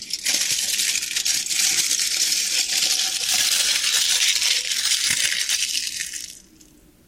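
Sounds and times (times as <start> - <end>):
aluminium foil crinkling: 0.0 - 6.4.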